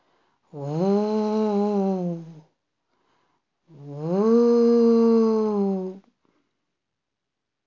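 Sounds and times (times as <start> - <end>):
person imitating wind howling through a forest: 0.6 - 2.4, 3.7 - 6.0.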